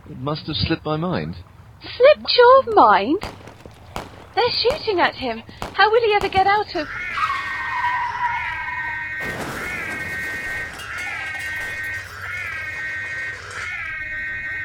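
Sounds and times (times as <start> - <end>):
speech: 0.1 - 3.4, 4.4 - 7.0
car tires squealing: 6.4 - 14.6.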